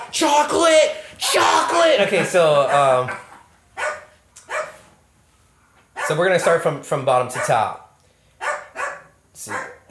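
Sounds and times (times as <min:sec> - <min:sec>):
speech: 0:00.1 - 0:03.3, 0:06.1 - 0:07.8, 0:09.4 - 0:09.9
laughter: 0:01.4 - 0:03.1
dog barking: 0:02.6 - 0:04.9, 0:06.0 - 0:07.8, 0:08.4 - 0:09.9.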